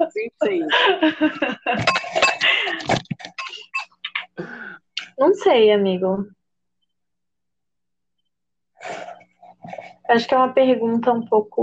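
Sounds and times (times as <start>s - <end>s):
speech: 0.0s - 2.3s, 5.5s - 6.4s, 10.1s - 11.6s
people laughing: 0.0s - 3.0s
glasses clinking in a toast: 1.8s - 4.1s.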